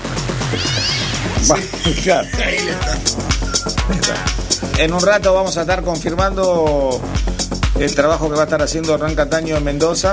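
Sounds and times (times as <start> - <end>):
steady musical backing: 0.0 - 10.1
cat meows woven into a song: 0.5 - 1.4
laughter: 1.4 - 4.5
speech: 1.4 - 10.1.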